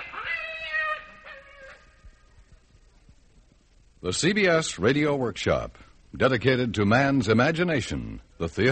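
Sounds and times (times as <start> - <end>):
black cat meowing and yowling: 0.0 - 2.1
speech: 4.0 - 8.7.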